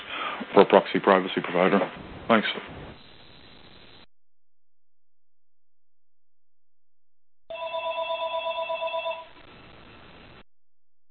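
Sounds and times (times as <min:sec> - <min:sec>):
speech: 0:00.6 - 0:02.8
telephone ringing with electronic trill: 0:07.5 - 0:09.4.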